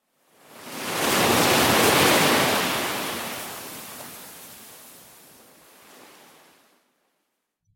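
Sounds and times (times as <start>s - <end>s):
ocean waves crashing: 0.5s - 6.7s.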